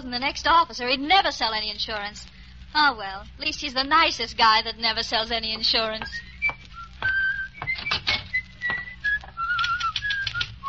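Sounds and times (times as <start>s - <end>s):
speech: 0.0s - 6.3s
person whistling a wavering tune: 6.1s - 10.6s
typewriter typing in an office: 9.5s - 10.6s.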